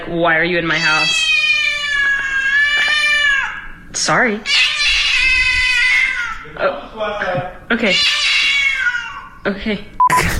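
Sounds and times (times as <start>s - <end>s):
speech: 0.1s - 1.5s, 3.9s - 4.6s, 6.6s - 8.3s, 9.4s - 10.3s
cat yowling in a room at home: 0.6s - 3.8s, 4.4s - 6.4s, 7.9s - 9.4s.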